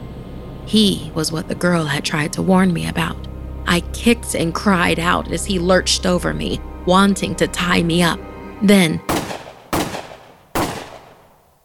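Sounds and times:
speech: 0.7 - 9.4
gunshots with long tails: 9.1 - 11.5.

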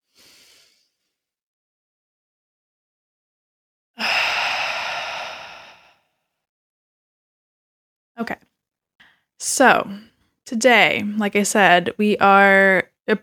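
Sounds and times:
deep human breath in and sighing exhale: 0.0 - 1.0, 4.0 - 6.3
speech: 8.2 - 8.4, 9.4 - 13.2.

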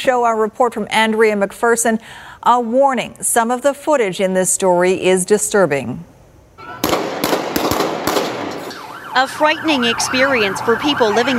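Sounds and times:
speech: 0.0 - 6.2, 9.2 - 11.3
steady hiss: 0.0 - 8.8
gunshots: 6.6 - 8.9.

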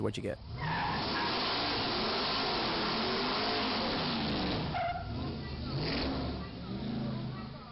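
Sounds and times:
speech: 0.0 - 0.8
car engine roaring during a burnout: 0.0 - 7.7
car tires screeching during a burnout: 0.4 - 7.7.

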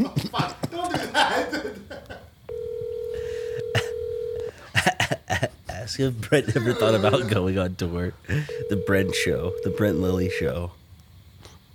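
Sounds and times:
laughter: 0.0 - 2.3, 4.6 - 7.5
phone electronic tone: 2.5 - 4.5, 8.5 - 10.4
speech: 6.0 - 10.8.

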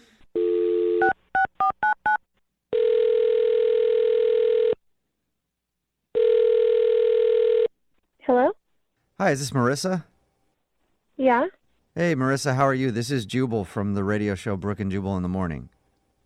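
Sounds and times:
telephone dial tone: 0.4 - 2.0, 2.7 - 4.8, 6.2 - 7.7
speech: 9.2 - 10.1, 11.2 - 15.8.

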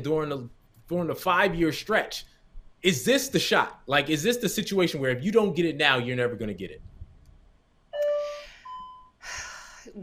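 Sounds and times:
speech: 0.0 - 6.9
home door chime set off when the house door is opened: 8.0 - 9.2.

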